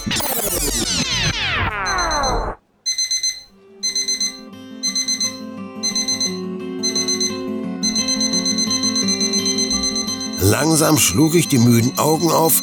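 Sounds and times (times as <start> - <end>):
speech: 0.1 - 0.4, 10.6 - 12.6
loud electronic alarm clock beeping: 1.7 - 11.6.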